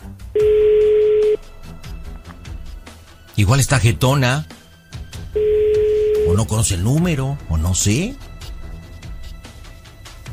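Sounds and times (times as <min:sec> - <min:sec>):
telephone tone on a call going unanswered to voicemail: 0:00.4 - 0:01.4, 0:05.3 - 0:06.5
speech: 0:03.4 - 0:04.5, 0:06.3 - 0:08.3.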